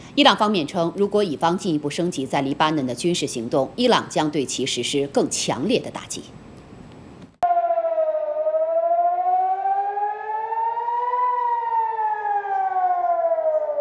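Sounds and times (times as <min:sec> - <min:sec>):
speech: 0:00.2 - 0:06.4
air raid siren wailing: 0:07.4 - 0:13.7.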